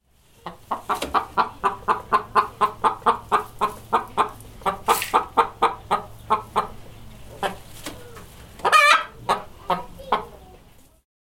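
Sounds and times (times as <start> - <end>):
hen: 0.0 - 11.0.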